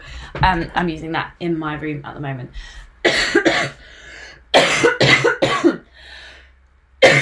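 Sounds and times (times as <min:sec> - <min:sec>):
speech: 0:00.3 - 0:04.0
harsh coughing: 0:03.0 - 0:03.8, 0:04.5 - 0:05.9, 0:07.0 - 0:07.1.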